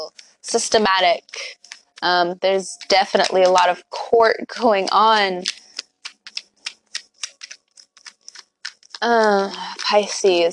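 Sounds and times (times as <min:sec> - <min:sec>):
speech: 0:00.1 - 0:05.6, 0:09.0 - 0:10.5
tarot cards being shuffled: 0:01.2 - 0:03.8, 0:04.6 - 0:10.5.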